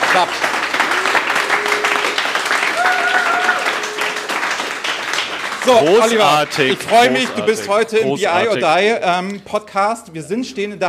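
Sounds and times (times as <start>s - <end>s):
live audience applause: 0.0s - 8.1s
speech: 0.1s - 0.6s, 5.7s - 10.8s
whoops and shouts from the audience: 1.0s - 4.4s.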